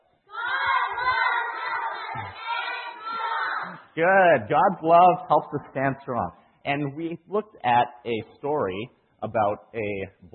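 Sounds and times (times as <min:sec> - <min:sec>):
group of children shouting an answer together: 0:00.3 - 0:03.8
speech: 0:04.0 - 0:10.3.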